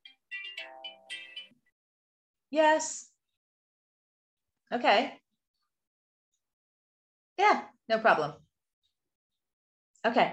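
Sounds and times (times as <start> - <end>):
mobile phone ringing with an electronic melody: 0.0 - 1.6
speech: 2.5 - 3.1, 4.7 - 5.2, 7.4 - 8.4, 10.0 - 10.3.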